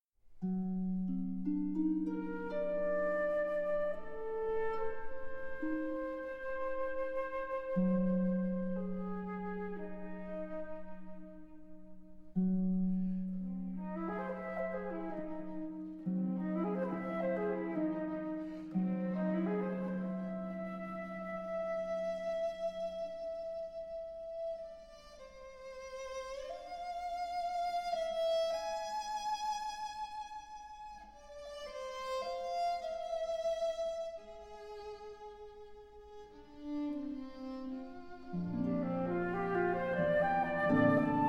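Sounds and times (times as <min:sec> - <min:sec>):
harp: 0:00.4 - 0:41.2
viola: 0:00.4 - 0:41.2
flute: 0:01.8 - 0:12.2, 0:13.0 - 0:35.0, 0:38.3 - 0:41.2.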